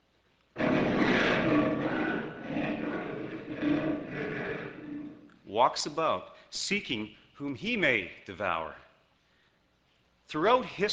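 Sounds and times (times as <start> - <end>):
lion roaring: 0.6 - 5.4
speech: 5.6 - 8.8, 10.3 - 10.9.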